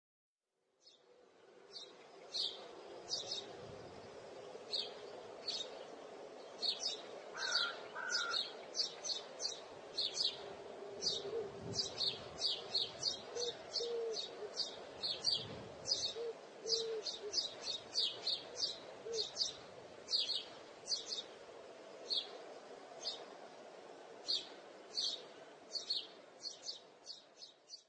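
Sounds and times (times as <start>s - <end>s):
bird chirping: 0.8s - 3.5s, 4.1s - 22.4s, 23.0s - 23.3s, 24.2s - 27.8s.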